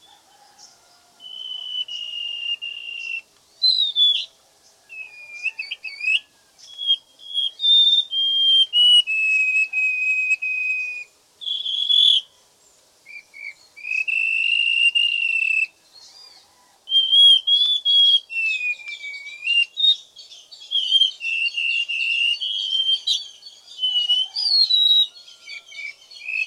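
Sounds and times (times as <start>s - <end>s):
white-rumped shama singing long whistles and varied whistled phrases: 1.2s - 4.3s, 4.9s - 12.3s, 13.1s - 26.4s.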